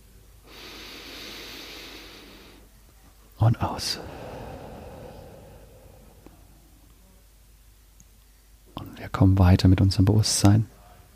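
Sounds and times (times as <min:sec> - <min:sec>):
deep inhalation through the nose during a guided breathing exercise: 0:00.4 - 0:02.6, 0:03.6 - 0:07.0
speech: 0:03.4 - 0:04.2, 0:09.2 - 0:10.7.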